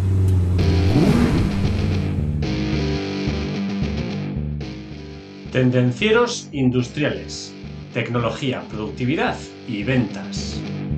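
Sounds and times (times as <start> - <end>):
car engine starting and revving: 0.0 - 3.9
speech: 5.6 - 10.8.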